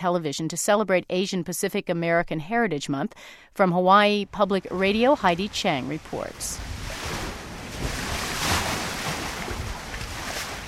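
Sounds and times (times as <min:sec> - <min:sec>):
speech: 0:00.0 - 0:06.8
ocean surf washing and roaring: 0:04.4 - 0:10.6.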